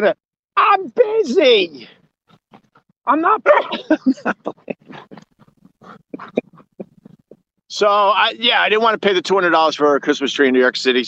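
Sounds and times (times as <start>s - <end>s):
speech: 0.0s - 5.2s, 7.7s - 11.0s
dog on a beach yelping and whining: 2.3s - 3.9s, 4.9s - 7.4s
laughter: 3.5s - 7.4s.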